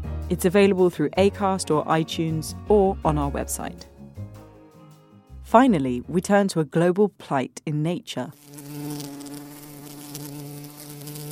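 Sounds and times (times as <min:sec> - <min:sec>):
speech: 0:00.3 - 0:03.9, 0:05.5 - 0:08.6
bees buzzing: 0:08.3 - 0:11.2.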